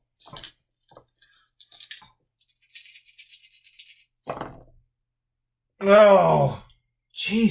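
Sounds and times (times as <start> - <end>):
black dice rattling and clattering: 0.2 - 4.3
speech: 5.8 - 6.6, 7.3 - 7.5.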